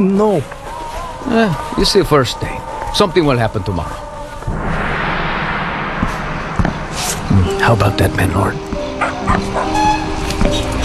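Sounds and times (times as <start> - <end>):
speech: 0.0 - 0.6, 1.2 - 4.0, 7.6 - 8.6, 9.2 - 9.7
dog barking: 0.0 - 4.5, 8.9 - 10.8
traffic: 0.0 - 10.8
steady horn-like tone: 4.5 - 8.7.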